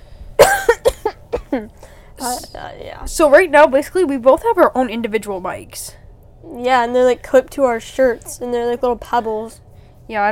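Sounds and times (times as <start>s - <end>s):
stifled cough: 0.4s - 2.4s
speech: 1.5s - 10.3s.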